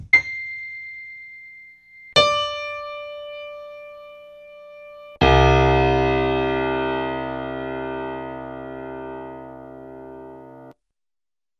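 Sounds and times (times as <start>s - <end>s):
high piano single tones: 0.1s - 10.8s
loud deep rich piano chord: 2.2s - 10.7s.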